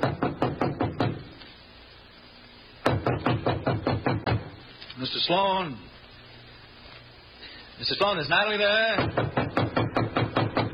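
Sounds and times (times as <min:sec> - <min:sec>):
rapid firm knocking on a door: 0:00.0 - 0:01.3, 0:02.8 - 0:04.5, 0:08.9 - 0:10.7
speech: 0:05.1 - 0:05.9, 0:07.8 - 0:09.3.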